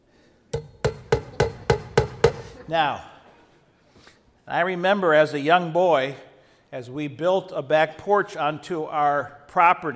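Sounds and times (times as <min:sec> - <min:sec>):
straight claw hammer blows with a metallic ping: 0:00.6 - 0:02.7
speech: 0:02.7 - 0:03.1, 0:04.5 - 0:09.9.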